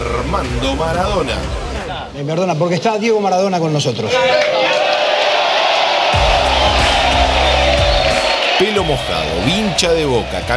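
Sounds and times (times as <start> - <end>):
speech: 0.3 - 4.6, 8.6 - 10.5
large audience cheering and applauding: 4.1 - 10.5.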